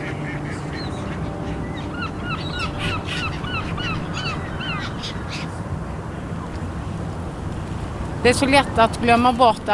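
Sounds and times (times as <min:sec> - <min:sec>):
birds chirping and squawking along a canal: 0:00.0 - 0:09.5
steady low rumble of traffic: 0:00.0 - 0:09.7
speech: 0:08.2 - 0:09.7.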